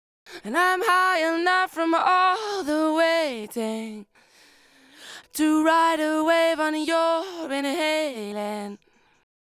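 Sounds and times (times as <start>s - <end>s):
multitrack lead vocal chorus: 0.4s - 4.1s, 5.1s - 8.8s.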